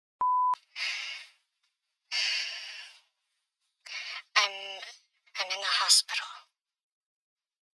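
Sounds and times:
voicemail system record tone beep: 0.2s - 0.6s
person speaking: 4.2s - 6.5s.

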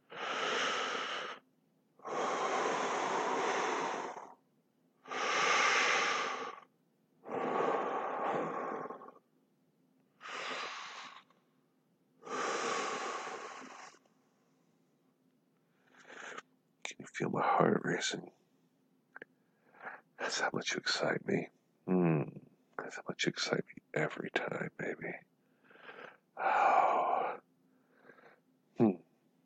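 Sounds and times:
slow heavy breathing: 0.0s - 1.4s, 2.0s - 4.4s, 5.0s - 9.2s, 10.2s - 11.4s, 12.2s - 14.1s, 15.7s - 16.5s, 25.4s - 28.5s
speech: 17.2s - 18.4s, 20.4s - 22.2s, 22.9s - 25.3s.

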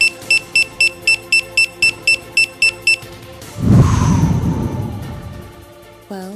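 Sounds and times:
bomb timer beeping on a device being disarmed: 0.0s - 3.0s
low rumbling whoosh: 3.5s - 6.0s.

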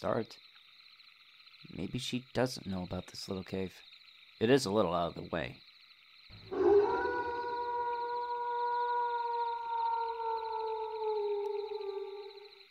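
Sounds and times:
speech: 0.0s - 0.5s, 1.6s - 5.7s
wolf howling: 6.4s - 12.6s.

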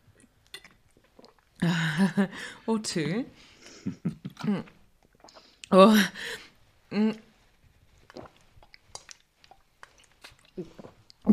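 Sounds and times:
person sipping a drink with soft slurps and lip smacks: 0.2s - 1.6s, 4.3s - 5.7s, 7.9s - 11.3s
speech: 1.6s - 4.8s, 5.7s - 7.3s.

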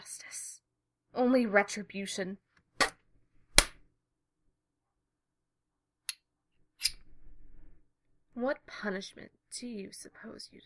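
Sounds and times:
speech: 1.2s - 2.5s, 8.4s - 10.6s
sharp crisp slaps on a person: 2.8s - 3.8s.

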